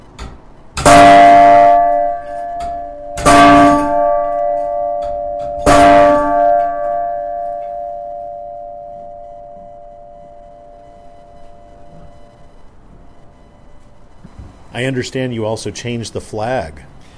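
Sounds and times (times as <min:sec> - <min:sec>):
bell ringing on the hour: 0:00.8 - 0:12.1
speech: 0:14.8 - 0:16.9.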